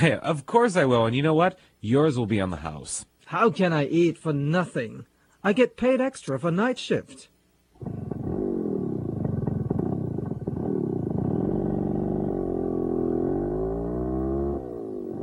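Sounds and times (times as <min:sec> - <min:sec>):
speech: 0:00.0 - 0:08.1
vehicle motor droning: 0:07.8 - 0:15.2.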